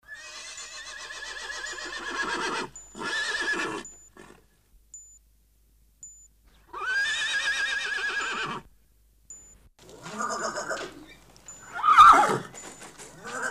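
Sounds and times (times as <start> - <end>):
horse neighing: 0.0 - 4.4, 6.7 - 8.7, 9.9 - 11.1, 11.7 - 12.5, 13.2 - 13.4.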